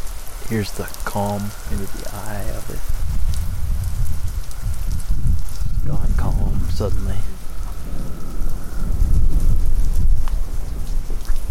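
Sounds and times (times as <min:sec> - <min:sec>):
heavy rain pouring at night: 0:00.0 - 0:11.4
speech: 0:00.5 - 0:03.1, 0:05.9 - 0:08.1
deep rolling rumble of thunder: 0:00.6 - 0:11.4.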